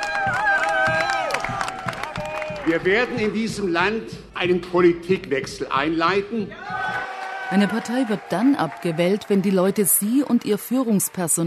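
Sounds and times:
crowd cheering and whooping at an election party: 0:00.0 - 0:02.8, 0:06.5 - 0:10.1
crowd clapping at an election party: 0:00.0 - 0:04.0, 0:06.6 - 0:11.4
speech: 0:02.7 - 0:06.8, 0:07.5 - 0:11.4.

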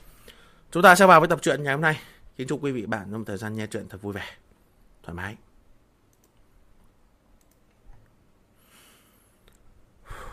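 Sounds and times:
person breathing: 0:00.0 - 0:00.7, 0:08.6 - 0:10.3
speech: 0:00.7 - 0:04.4, 0:05.0 - 0:05.5.

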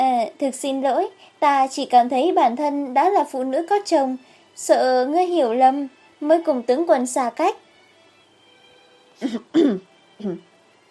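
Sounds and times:
speech: 0:00.3 - 0:07.6, 0:09.2 - 0:10.5
dry voiced cough: 0:09.2 - 0:09.8.

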